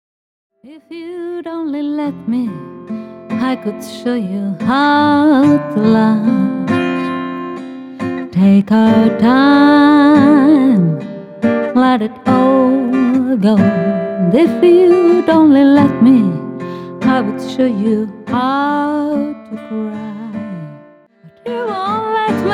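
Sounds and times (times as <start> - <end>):
woman singing: 0.6 - 7.4, 8.2 - 22.5.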